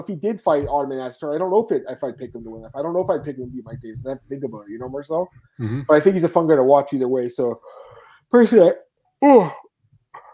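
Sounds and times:
speech: 0.0 - 9.6
person yawning: 5.6 - 5.8, 9.2 - 9.7.

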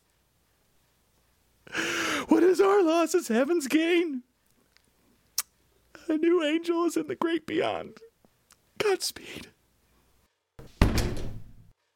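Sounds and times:
speech: 2.6 - 4.3, 6.1 - 8.1, 8.8 - 9.6
office door slamming shut: 10.6 - 11.7.

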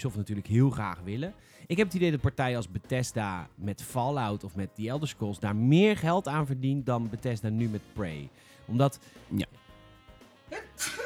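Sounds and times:
speech: 0.0 - 9.6
sneeze with a quick sharp inhale: 10.5 - 11.0.

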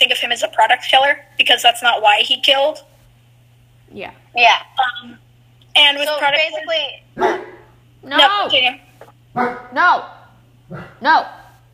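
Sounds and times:
low steady hum: 0.0 - 11.7
speech: 0.3 - 2.9, 3.9 - 5.2, 5.8 - 8.8, 9.4 - 11.4
dog barking: 7.2 - 7.7, 9.3 - 9.8, 10.7 - 11.5.

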